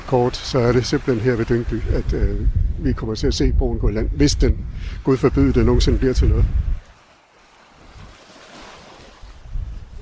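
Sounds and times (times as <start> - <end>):
heavy low-frequency wind buffeting: 0.0 - 7.0, 9.2 - 10.0
wind gusts across an open coastline on a windy day: 0.0 - 10.0
speech: 0.1 - 6.7.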